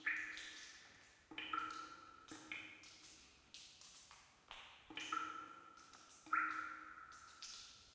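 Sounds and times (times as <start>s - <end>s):
cave ambience: 0.0s - 7.9s.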